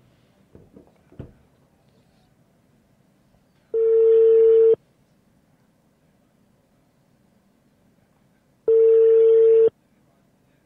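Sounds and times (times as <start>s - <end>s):
phone call ringing tone beep: 3.8s - 4.8s, 8.7s - 9.7s.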